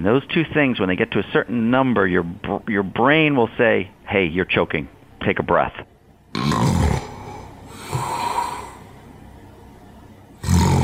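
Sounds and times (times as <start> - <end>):
speech: 0.0 - 5.9
person snoring heavily: 6.4 - 8.9, 10.4 - 10.8.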